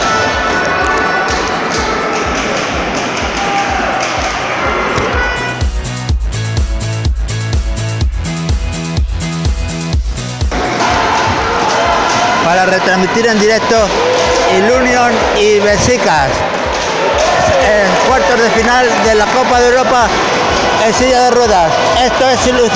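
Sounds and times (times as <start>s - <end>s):
crowd roaring at a wheelchair basketball game: 0.0s - 5.6s, 10.5s - 22.7s
rhythmic thumping beat: 0.0s - 22.7s
speech: 12.7s - 16.6s, 17.7s - 22.7s.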